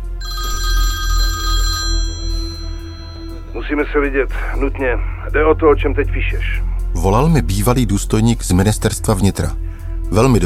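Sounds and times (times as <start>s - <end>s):
telephone ringing with bright sustained electronic tone: 0.0s - 3.6s
speech: 3.7s - 10.4s.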